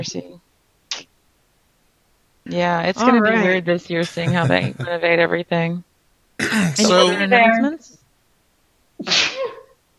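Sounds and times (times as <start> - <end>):
speech: 0.0 - 0.4, 2.5 - 8.0, 9.0 - 9.6
laughter: 4.0 - 4.9
loud sneeze: 9.0 - 9.6.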